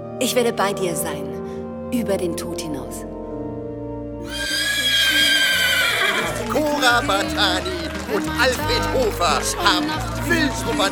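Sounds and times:
speech: 0.2 - 3.2, 6.5 - 10.9
horse pulling a wedding carriage neighing: 4.3 - 6.5
laughter: 5.2 - 10.9.

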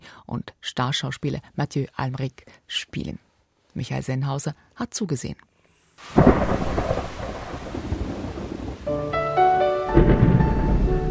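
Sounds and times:
speech: 0.3 - 6.8
steady wash of heavy rain: 6.0 - 11.0
loud rolling theatrical thunder booms: 6.2 - 8.9, 9.9 - 11.0.

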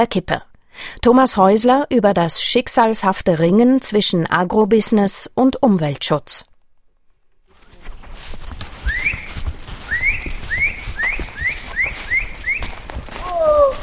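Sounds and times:
speech: 0.0 - 6.5
horse trotting clip-clop: 7.5 - 13.8
cattle rancher on horseback whistling rising calls: 8.8 - 12.7
cattle rancher shouting calls rounding up cattle outdoors: 10.0 - 13.8.

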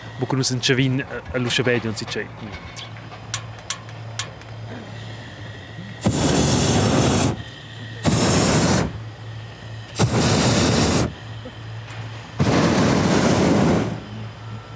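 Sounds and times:
low steady hum: 0.0 - 14.7
speech: 0.2 - 2.8
hot air balloon burner roaring blasts in a firing test: 4.7 - 14.7.

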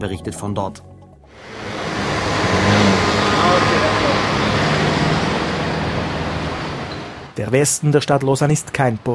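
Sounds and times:
speech: 0.0 - 1.5, 7.4 - 9.1
dense road traffic roar on major roads in the west of Lausanne: 1.3 - 7.4
many cars passing: 1.3 - 7.4.

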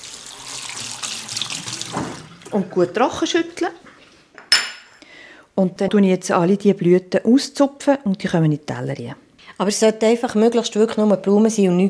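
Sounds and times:
tap water running into a kitchen sink over flower stems: 0.0 - 2.6
speech: 2.5 - 3.9, 5.6 - 11.8.

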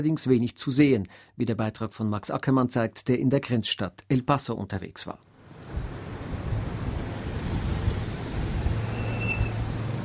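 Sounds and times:
speech: 0.0 - 5.3
stop-and-go road traffic on the Bridge of the Americas border crossing: 5.3 - 10.0.

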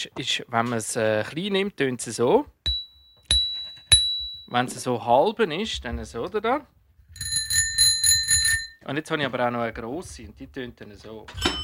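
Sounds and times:
speech: 0.0 - 2.6, 4.5 - 7.3, 8.8 - 11.6
bicycle bell ringing in a bike shop workshop outside Zofingen: 2.7 - 4.6, 7.2 - 8.8, 11.4 - 11.6.

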